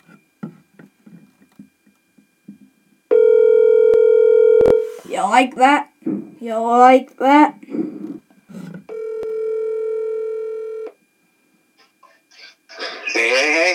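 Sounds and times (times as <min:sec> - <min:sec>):
phone ringback tone during an outgoing call: 0:03.1 - 0:04.9, 0:08.9 - 0:10.9
speech: 0:05.2 - 0:07.6.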